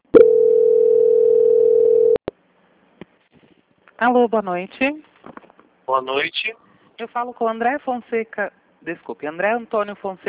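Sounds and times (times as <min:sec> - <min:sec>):
steady telephone tone during bank call transfer: 0:00.1 - 0:02.2
speech: 0:04.0 - 0:10.2.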